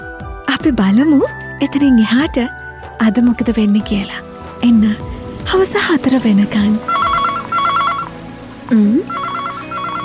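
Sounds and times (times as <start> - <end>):
speech: 0.6 - 6.9, 8.7 - 9.2
telephone ringing with electronic trilling tones: 6.9 - 8.4, 9.1 - 10.0.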